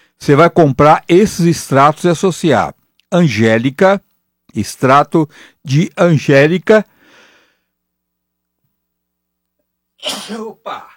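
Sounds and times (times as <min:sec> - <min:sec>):
low steady hum: 0:00.0 - 0:10.9
speech: 0:00.2 - 0:06.9, 0:10.0 - 0:10.9
sneeze: 0:10.0 - 0:10.9.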